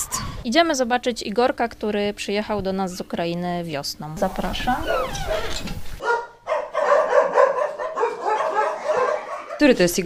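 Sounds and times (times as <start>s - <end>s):
speech: 0.4s - 5.9s, 9.6s - 10.0s
dog barking sharply at an animal foundation: 6.0s - 9.8s.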